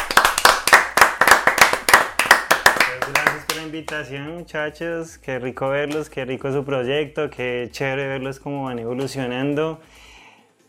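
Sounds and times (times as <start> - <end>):
people clapping to welcome a guest: 0.0 - 4.1
speech: 3.7 - 10.1.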